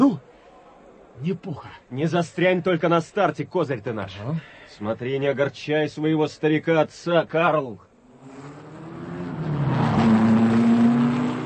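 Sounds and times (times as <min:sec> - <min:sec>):
speech: 0:00.0 - 0:00.3, 0:01.2 - 0:08.6
racing car engines roaring as a car pulls away from the start: 0:08.0 - 0:11.4.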